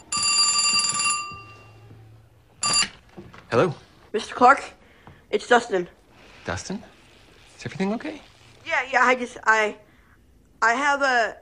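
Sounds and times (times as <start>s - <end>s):
telephone ringing at night with a bright electronic ring: 0.0s - 3.3s
speech: 3.5s - 6.9s, 7.6s - 9.8s, 10.6s - 11.3s.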